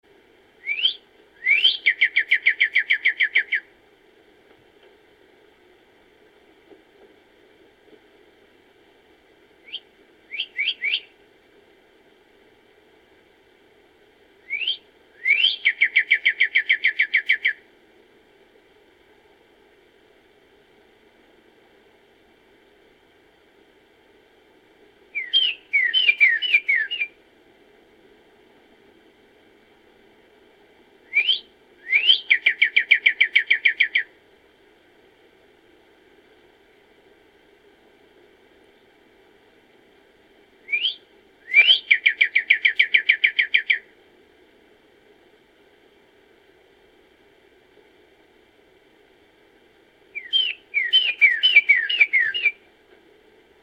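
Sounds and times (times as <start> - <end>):
bird calling: 0.6 - 3.7, 9.6 - 11.1, 14.4 - 17.6, 25.2 - 27.1, 31.1 - 34.1, 40.6 - 43.9, 50.2 - 52.7.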